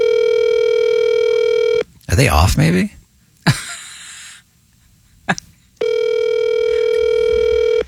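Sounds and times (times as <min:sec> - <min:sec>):
phone line ring tone on an outgoing call: 0:00.0 - 0:01.8, 0:05.8 - 0:07.8
speech: 0:02.2 - 0:03.0.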